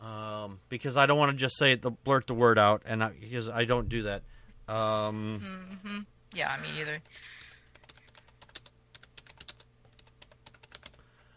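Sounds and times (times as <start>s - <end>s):
low hum: 0.0s - 11.3s
speech: 0.7s - 7.3s
typing on a computer keyboard: 7.0s - 11.1s.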